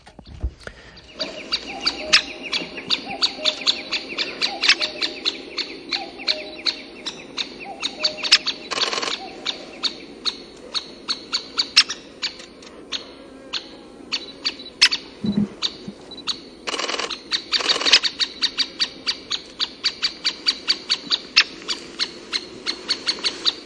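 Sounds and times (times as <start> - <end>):
great spotted woodpecker calling: 0.1 - 23.6.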